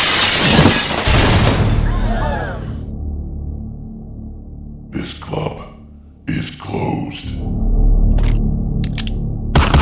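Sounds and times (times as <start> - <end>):
glass skylight smashing: 0.0 - 1.8
low rumble: 2.8 - 9.7.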